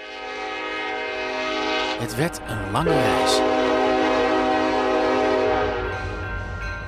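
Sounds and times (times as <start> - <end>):
loud train horn in sustained harmonic blasts: 0.0 - 2.0, 2.9 - 6.0
train rumbling along: 0.0 - 6.8
speech: 2.0 - 3.6.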